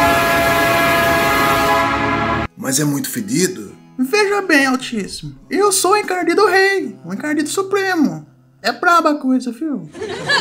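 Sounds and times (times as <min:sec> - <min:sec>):
train horn blast: 0:00.0 - 0:02.6
speech: 0:02.7 - 0:10.3
laughter: 0:09.9 - 0:10.3.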